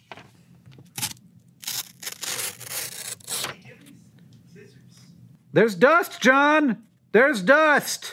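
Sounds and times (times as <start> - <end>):
small knife or razor cutting paper: 1.0 - 3.5
speech: 5.5 - 8.1.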